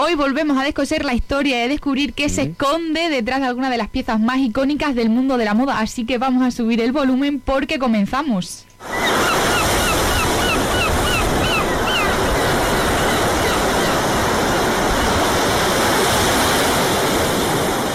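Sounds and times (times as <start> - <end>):
speech: 0.1 - 9.2
seagulls squawking over the beach: 8.8 - 16.2
ocean waves breaking on the shore: 8.8 - 17.9.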